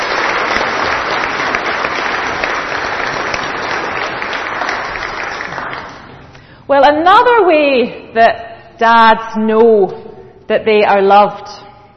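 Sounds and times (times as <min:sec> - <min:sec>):
audience applause: 0:00.0 - 0:06.3
speech: 0:06.7 - 0:11.6.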